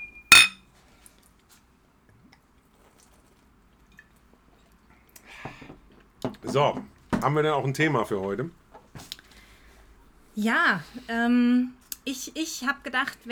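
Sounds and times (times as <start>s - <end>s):
glasses clinking in a toast: 0.0s - 0.6s
speech: 6.4s - 8.6s, 10.4s - 13.3s.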